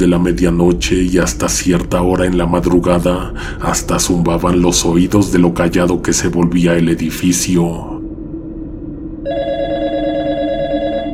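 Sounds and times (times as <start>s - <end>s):
speech: 0.0s - 7.9s
low hum: 0.0s - 11.1s
telephone ringing with a bright electronic tone: 9.3s - 11.1s.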